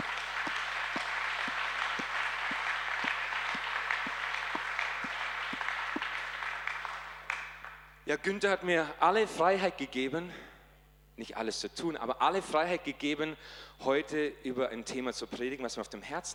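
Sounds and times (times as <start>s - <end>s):
low regular pulse: 0.0s - 6.3s
congregation applauding during a church service: 0.0s - 8.0s
speech: 8.1s - 10.5s, 11.2s - 16.3s.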